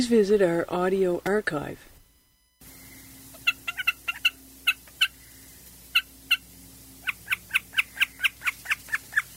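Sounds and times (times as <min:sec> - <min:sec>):
speech: 0:00.0 - 0:01.9
common snipe calling: 0:02.6 - 0:09.3.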